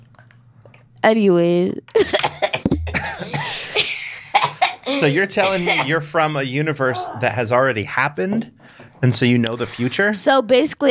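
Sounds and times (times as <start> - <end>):
speech: 1.0 - 2.4, 4.9 - 10.8
person clearing throat: 2.0 - 6.0
person coughing: 2.0 - 6.0.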